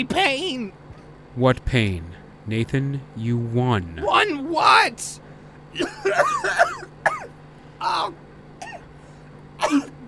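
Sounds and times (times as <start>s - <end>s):
speech: 0.0s - 0.8s, 1.4s - 6.9s, 7.8s - 8.2s, 9.7s - 10.0s
person coughing raspily: 5.8s - 7.4s, 8.6s - 8.9s, 9.6s - 10.0s.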